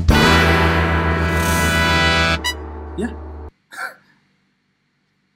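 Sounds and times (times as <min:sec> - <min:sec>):
podcast intro jingle of brassy horn-like notes: 0:00.1 - 0:03.5.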